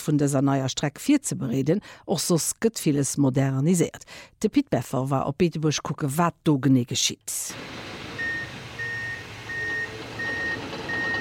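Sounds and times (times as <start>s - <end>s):
speech: 0.0s - 8.0s
construction site noise: 7.5s - 11.1s
low rumble of engine at a construction site: 7.5s - 11.1s
electronic beeps from a reversing truck: 8.1s - 11.1s.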